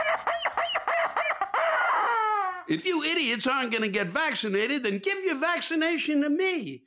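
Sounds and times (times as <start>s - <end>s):
rubber chicken toy squawking: 0.0s - 2.7s
speech: 2.7s - 6.8s.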